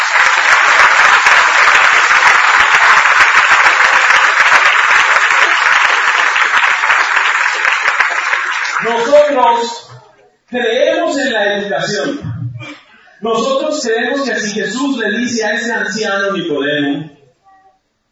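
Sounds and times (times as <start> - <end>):
large audience applauding: 0.0 - 9.6
speech: 8.9 - 9.8, 10.5 - 12.3, 13.2 - 17.1.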